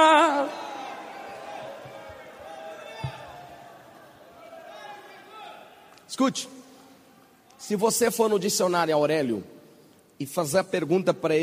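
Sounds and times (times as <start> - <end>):
crowd voices and cheering: 0.0 - 6.1
audience shouting: 0.1 - 6.0
speech: 6.2 - 6.6, 7.7 - 9.6, 10.2 - 11.4.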